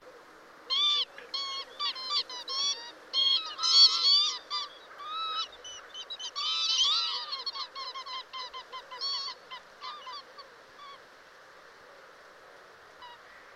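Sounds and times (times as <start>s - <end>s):
high-pitched bird calls: 0.7s - 11.0s.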